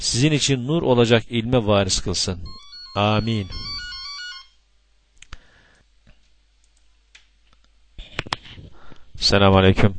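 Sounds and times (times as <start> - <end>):
speech: 0.0 - 3.8, 9.2 - 9.9
mobile phone ringtone: 2.5 - 4.6.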